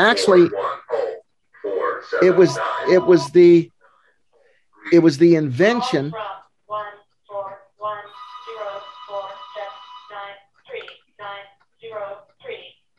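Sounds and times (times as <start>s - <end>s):
speech: 0.0s - 0.8s, 2.1s - 3.7s, 4.8s - 6.9s
telephone ringing with incoming call: 8.1s - 10.2s.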